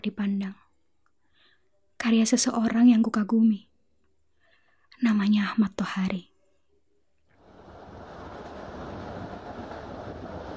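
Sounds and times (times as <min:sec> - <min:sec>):
speech: 0:00.0 - 0:00.6, 0:02.1 - 0:03.7, 0:05.0 - 0:06.3
economy-class train carriage rolling along rails heard from inside: 0:07.4 - 0:10.5.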